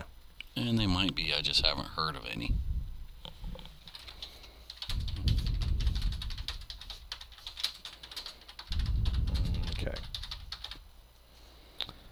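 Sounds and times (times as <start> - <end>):
speech: 0.7 - 2.7
fingers typing on a computer keyboard: 3.8 - 10.9.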